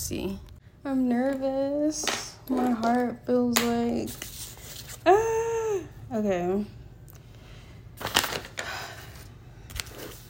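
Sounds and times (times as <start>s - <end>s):
speech: 0.1s - 4.3s, 5.0s - 5.5s, 6.1s - 6.8s
paper rustling as an old notebook is opened: 4.0s - 5.1s, 8.0s - 10.2s
notebook pages crinkling and flipping: 4.1s - 5.0s, 8.0s - 8.6s, 9.2s - 10.2s.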